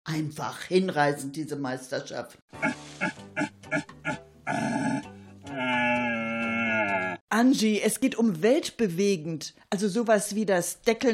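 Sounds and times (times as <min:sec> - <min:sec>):
speech: 0:00.1 - 0:03.9, 0:07.4 - 0:11.1
person imitating a rutting stag's roar with a horn-like deer caller: 0:02.6 - 0:07.2.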